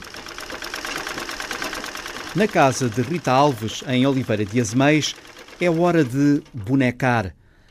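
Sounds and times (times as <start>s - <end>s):
century-old treadle sewing machine running in a home in Oliveira de Azeméis: 0.0s - 7.0s
speech: 2.3s - 7.4s.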